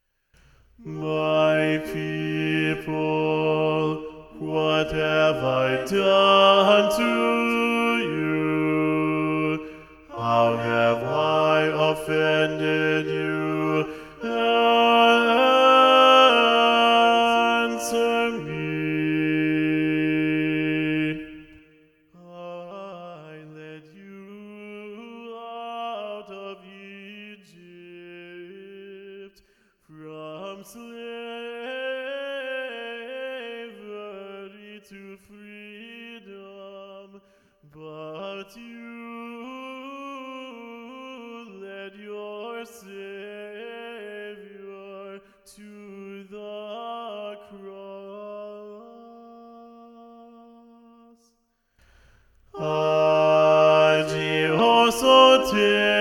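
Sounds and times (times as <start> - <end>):
SATB choir rehearsal track singing with bass voices predominant: 0.8 - 21.6, 52.5 - 55.9.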